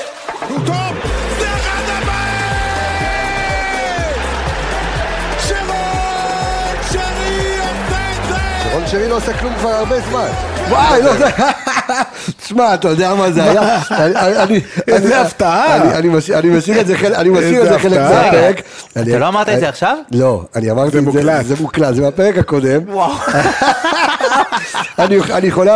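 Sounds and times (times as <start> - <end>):
podcast intro theme music with bass-heavy arrangement and steady beat: 0.3 - 11.5
laughter: 0.4 - 12.4, 13.0 - 16.0, 23.0 - 25.7
speech: 8.9 - 25.7.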